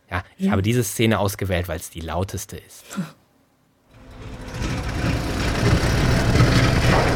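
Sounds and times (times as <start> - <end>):
speech: 0.4 - 3.2
construction site machinery rumble and clatter: 4.0 - 7.1.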